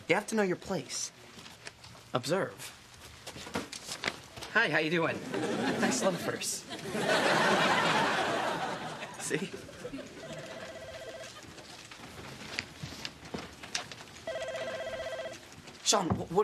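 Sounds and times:
speech: 0:00.1 - 0:01.2, 0:02.1 - 0:02.8, 0:04.5 - 0:08.0, 0:09.3 - 0:10.2, 0:15.9 - 0:16.4
rustling: 0:01.1 - 0:04.6, 0:09.7 - 0:16.4
laughter: 0:05.0 - 0:11.7
electronic telephone trilling: 0:10.1 - 0:11.5, 0:14.2 - 0:15.5.

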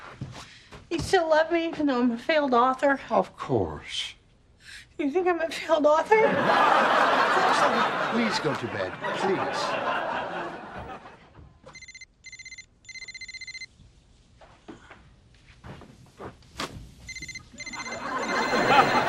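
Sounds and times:
speech: 0:00.9 - 0:04.2, 0:05.0 - 0:10.0
laughter: 0:06.0 - 0:11.5, 0:17.8 - 0:19.0
telephone ringing in short electronic bursts: 0:11.7 - 0:13.7, 0:17.1 - 0:19.0.

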